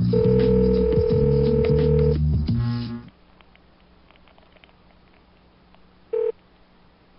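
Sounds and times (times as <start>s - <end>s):
steady telephone dial tone: 0.1s - 2.2s, 6.1s - 6.3s.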